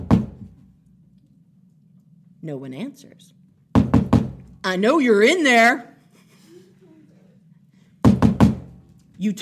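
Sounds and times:
heavy fist pounding on a door: 0.0 - 0.5, 3.8 - 4.4, 8.0 - 8.7
speech: 2.4 - 3.4, 4.6 - 6.0, 9.2 - 9.4.

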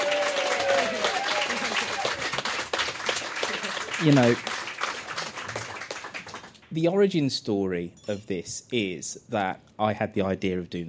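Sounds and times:
crowd applauding: 0.0 - 6.6
speech: 4.0 - 4.5, 6.8 - 10.8.

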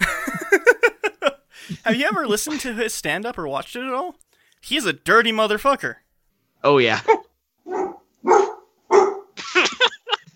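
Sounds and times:
laughter: 0.0 - 2.6, 9.4 - 10.3
speech: 1.8 - 6.0, 6.6 - 7.2
dog barking: 7.0 - 9.4.

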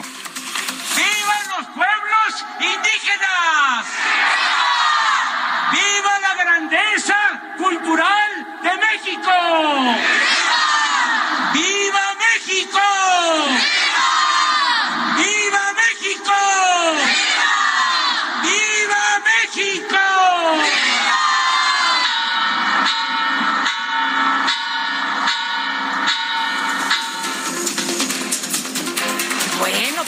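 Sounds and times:
steady din of crowd cheering: 1.0 - 30.0
large crowd in Mexico shouting in unison in response to patriotic cries: 2.3 - 23.8
speech: 8.9 - 10.3.

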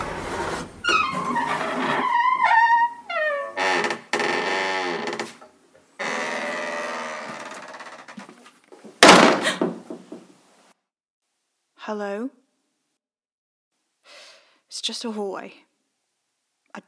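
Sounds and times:
white door creaking open: 0.0 - 5.4, 6.0 - 8.4
white door slamming shut: 9.0 - 10.2
speech: 11.9 - 12.4, 14.9 - 15.7.

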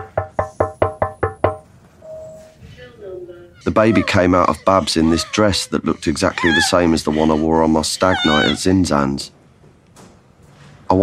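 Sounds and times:
knocking on a window: 0.0 - 1.6
speech: 3.6 - 9.4.

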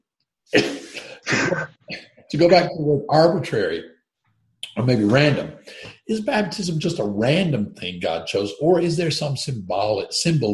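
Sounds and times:
harsh raspy coughs: 0.6 - 2.2
speech: 1.5 - 3.9, 4.8 - 10.5.

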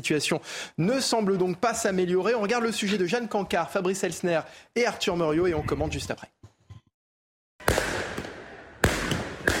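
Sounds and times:
speech: 0.0 - 6.3
firework mortars fired at police during clashes outside a high school gate: 7.6 - 9.5.

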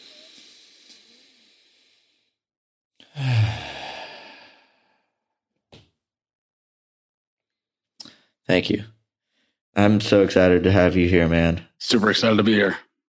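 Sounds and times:
two men taking a deep breath together: 0.0 - 2.4, 3.0 - 5.2
speech: 8.5 - 9.0, 9.8 - 12.9.

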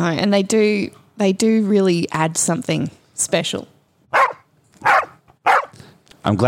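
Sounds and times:
speech: 0.0 - 3.7, 6.2 - 6.4
dog barking loudly and sharply: 4.1 - 5.8.

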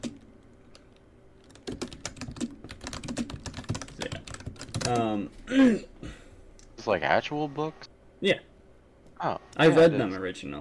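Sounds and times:
crisp typing on a computer keyboard: 0.0 - 5.1
speech: 4.9 - 6.0, 6.8 - 8.5, 9.2 - 10.5.

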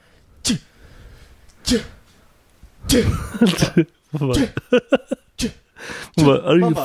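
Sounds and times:
person imitating sneezing: 0.4 - 0.7, 1.6 - 2.0, 2.8 - 4.6
speech: 0.5 - 0.7, 1.7 - 2.0, 2.9 - 6.8
laughter: 3.0 - 5.3.

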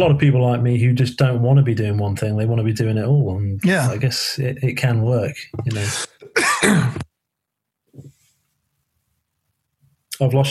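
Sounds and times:
speech: 0.0 - 7.1, 10.2 - 10.4
soft throat clearing: 5.8 - 7.1
cough: 6.2 - 7.1.

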